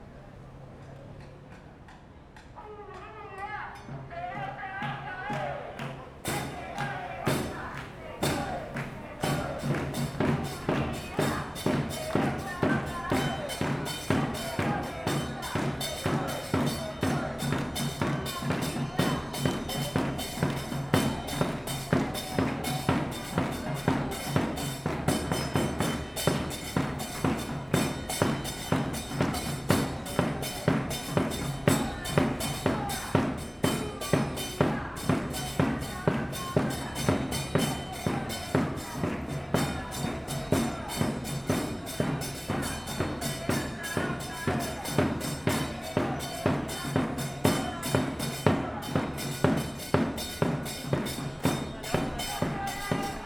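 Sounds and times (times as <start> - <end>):
street protest: 0.0 - 53.2.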